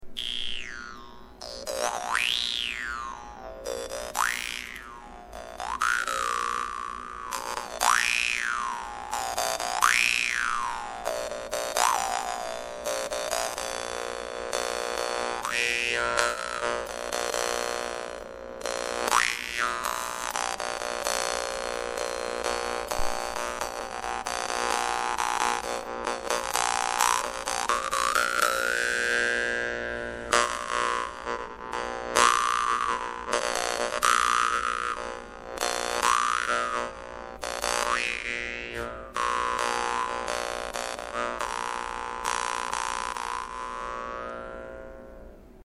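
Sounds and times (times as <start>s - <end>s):
vargan dan moi fish jaw harp: 0.2s - 45.0s.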